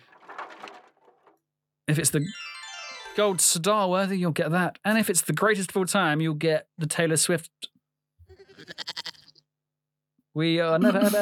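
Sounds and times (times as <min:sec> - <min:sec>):
speech: 0:01.9 - 0:02.5, 0:03.2 - 0:07.7, 0:10.4 - 0:11.2
goat bleating with a quavering warble: 0:08.3 - 0:09.4
laughter: 0:10.8 - 0:11.2.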